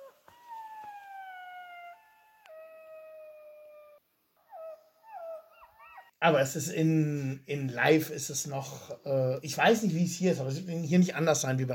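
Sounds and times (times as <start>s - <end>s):
golden jackals yipping: 0.0s - 6.2s
speech: 6.2s - 11.7s.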